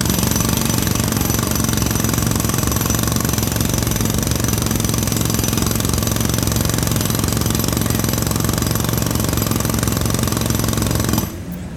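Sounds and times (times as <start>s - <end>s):
jackhammer pounding: 0.0s - 11.6s.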